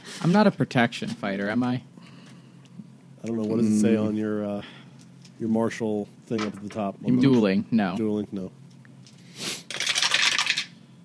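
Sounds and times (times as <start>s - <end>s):
speech: 0.2s - 1.9s, 3.2s - 4.8s, 5.4s - 8.6s
handful of dice clattering onto a hard table: 9.7s - 10.8s.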